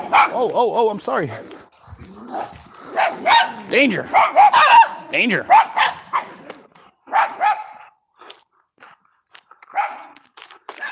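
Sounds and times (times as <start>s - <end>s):
dogs barking outdoors near houses: 0.0s - 0.5s, 2.2s - 8.0s, 9.7s - 10.9s
speech: 0.4s - 1.7s, 3.1s - 5.9s.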